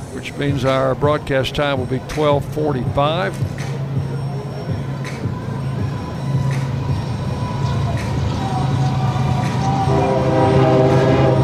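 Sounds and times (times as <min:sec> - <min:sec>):
train rumbling past on tracks behind the right field wall of a baseball stadium: 0:00.0 - 0:11.4
speech: 0:00.1 - 0:03.7
train horn blaring: 0:07.0 - 0:11.4.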